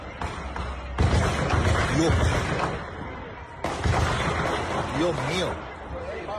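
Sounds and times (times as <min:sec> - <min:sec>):
noise: 0:00.0 - 0:06.3
real gunshots from a shootout: 0:00.1 - 0:02.9, 0:03.6 - 0:05.4
speech: 0:02.0 - 0:02.5, 0:05.0 - 0:05.7.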